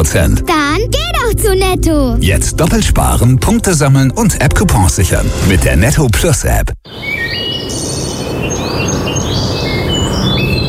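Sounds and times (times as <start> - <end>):
speech: 0.0 - 7.1
birds chirping and whistling in a Bavarian forest: 6.8 - 10.6.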